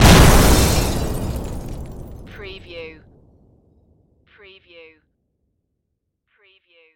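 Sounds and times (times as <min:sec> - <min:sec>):
explosion debris: 0:00.0 - 0:03.7.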